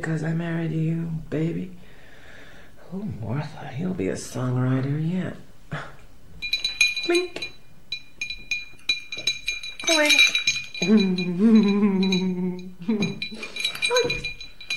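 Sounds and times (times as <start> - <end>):
speech: 0.0 - 1.8, 2.9 - 5.9, 7.1 - 7.4, 9.9 - 14.1
glass clinking: 6.4 - 14.7
wavering drawn-out vocal sound: 10.0 - 14.4.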